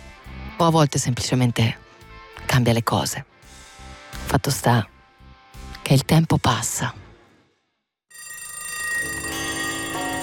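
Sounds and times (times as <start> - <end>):
speech: 0.6 - 1.8, 2.5 - 3.3, 4.3 - 4.9, 5.9 - 7.0
alarm clock bell ringing: 8.1 - 10.2.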